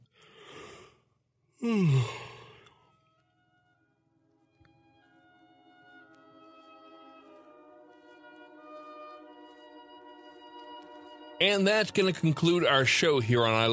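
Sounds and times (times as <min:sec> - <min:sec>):
soft sustained music: 0:01.5 - 0:13.7
speech: 0:01.6 - 0:02.2, 0:11.4 - 0:13.7
person yawning: 0:01.6 - 0:02.7.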